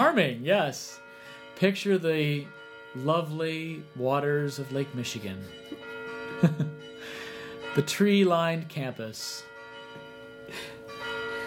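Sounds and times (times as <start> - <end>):
church bells ringing: 0.0 - 11.4
speech: 0.2 - 1.0, 1.6 - 5.8, 6.4 - 9.5, 10.5 - 10.8
laughter: 6.4 - 6.8.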